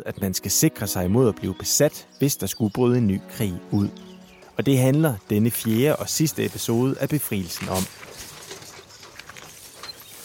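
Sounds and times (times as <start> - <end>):
speech: 0.0 - 8.1
old horse-drawn cart creaking and rattling: 3.2 - 10.2
farm machinery clattering: 4.2 - 10.2.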